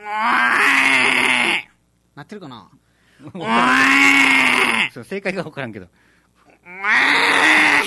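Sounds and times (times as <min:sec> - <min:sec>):
person imitating a water buffalo's moo-like bellow: 0:00.0 - 0:01.7, 0:03.4 - 0:04.9, 0:06.5 - 0:07.8
speech: 0:02.2 - 0:06.1.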